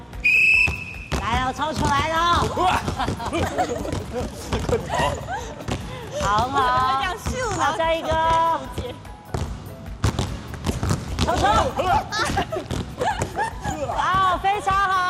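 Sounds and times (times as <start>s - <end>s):
sharp whistle blast: 0.2s - 1.2s
basketball bouncing on a court during a dribbling drill: 0.5s - 14.9s
laughter: 2.5s - 7.1s, 11.3s - 14.4s.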